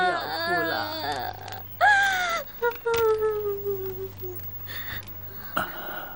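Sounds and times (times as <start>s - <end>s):
young woman crying and sobbing in grief: 0.0s - 4.7s.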